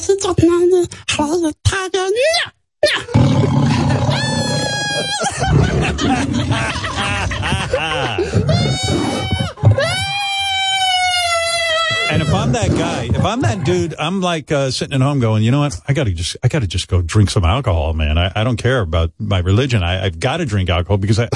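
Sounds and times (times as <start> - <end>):
speech: 0.1 - 3.5, 5.2 - 9.0, 12.3 - 21.3
tiger roaring and snarling: 3.1 - 7.2, 8.1 - 9.5, 12.1 - 13.4
laughter: 3.1 - 10.1, 11.7 - 14.0
excited human voices and shouts: 7.8 - 13.4.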